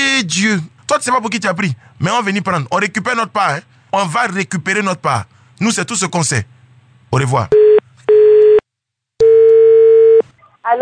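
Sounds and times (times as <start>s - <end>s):
speech: 0.2s - 7.8s, 10.6s - 10.8s
telephone busy tone after the other party hangs up: 7.6s - 8.6s, 9.2s - 10.2s.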